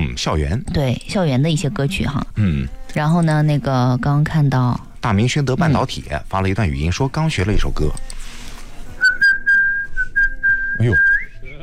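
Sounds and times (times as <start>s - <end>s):
speech: 0.2s - 8.2s, 10.8s - 11.1s
person whistling a melody: 9.0s - 11.4s.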